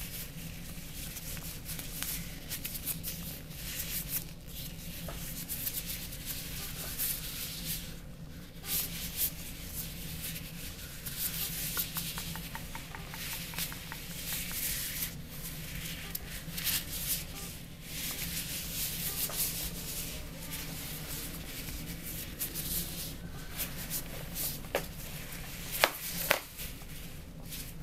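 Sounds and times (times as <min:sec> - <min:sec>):
vinyl gloves rubbing and crinkling: 0:00.0 - 0:27.8
low hum: 0:10.8 - 0:25.8
sharp vinyl glove snaps: 0:11.6 - 0:15.0, 0:25.7 - 0:26.5.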